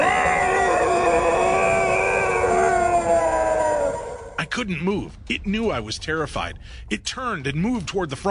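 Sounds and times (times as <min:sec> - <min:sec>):
large dark-coated creature wailing guttural howl: 0:00.0 - 0:04.5
speech: 0:04.5 - 0:08.2.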